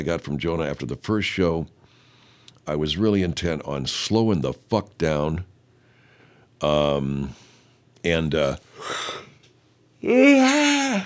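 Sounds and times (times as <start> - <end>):
speech: 0.0 - 1.8, 2.6 - 5.5, 6.6 - 9.2, 10.0 - 11.0
person yawning: 10.0 - 11.0.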